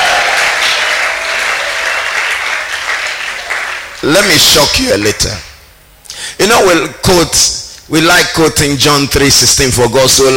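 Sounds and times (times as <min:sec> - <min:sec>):
roar of crowd voices: 0:00.0 - 0:04.0
large audience clapping: 0:00.0 - 0:05.4
speech: 0:04.0 - 0:05.5, 0:06.4 - 0:10.3.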